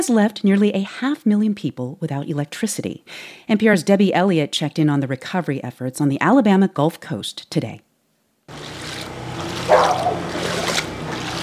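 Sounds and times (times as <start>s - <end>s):
speech: 0.0s - 7.9s
person wading through knee-deep floodwater: 8.5s - 11.4s.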